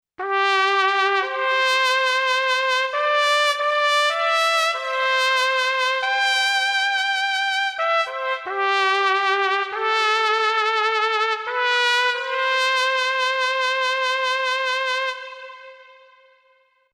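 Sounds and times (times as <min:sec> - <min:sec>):
sad synthesizer trumpet patch: 0:00.2 - 0:16.9.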